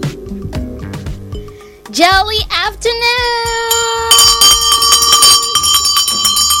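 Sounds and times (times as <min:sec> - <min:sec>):
speech: 0:02.0 - 0:04.2
bell ringing as show signal: 0:03.6 - 0:06.5.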